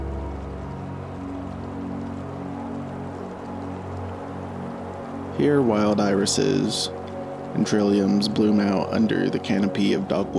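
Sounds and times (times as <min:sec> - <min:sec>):
low rumbling spring breeze: 0:00.0 - 0:10.3
steady rushing of a flowing river: 0:00.0 - 0:10.3
speech: 0:05.4 - 0:07.0, 0:07.6 - 0:10.3.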